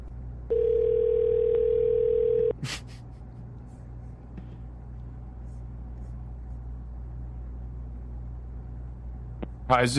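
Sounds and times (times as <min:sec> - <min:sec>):
low noise: 0:00.0 - 0:09.9
telephone line electronic ringing tone: 0:00.5 - 0:02.5
speech: 0:09.7 - 0:09.9.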